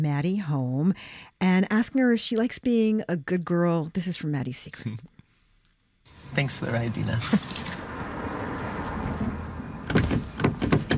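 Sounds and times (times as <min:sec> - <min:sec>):
speech: 0:00.0 - 0:05.1, 0:06.3 - 0:07.8
stuck car door handle being yanked: 0:09.2 - 0:10.9.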